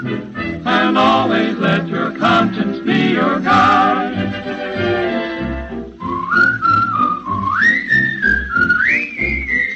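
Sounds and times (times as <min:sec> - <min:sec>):
speech: 0:00.0 - 0:02.7
instrumental accompaniment with a bouncy low rhythm: 0:00.0 - 0:09.7
person whistling a short sliding tune: 0:06.0 - 0:09.7.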